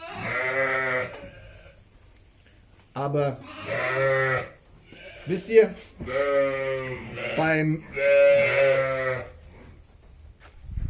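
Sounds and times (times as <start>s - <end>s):
many excited sheep bleating: 0.0s - 1.7s, 3.4s - 5.4s, 6.0s - 9.4s
speech: 3.0s - 4.5s, 5.3s - 9.3s.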